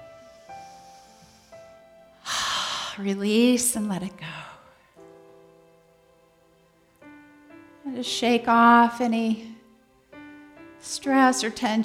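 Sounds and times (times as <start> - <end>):
deep breath in: 0.0 - 3.0
speech: 3.0 - 4.5, 8.0 - 9.5, 10.8 - 11.8.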